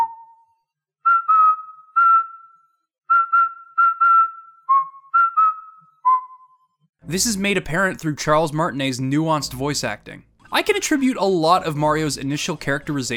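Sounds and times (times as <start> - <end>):
person whistling a tune: 0.0 - 6.8
speech: 7.1 - 13.1.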